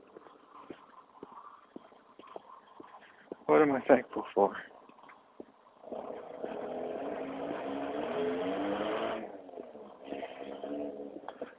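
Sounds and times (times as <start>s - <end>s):
speech: 3.5s - 4.7s
car engine on a morning newspaper delivery round: 5.8s - 11.5s.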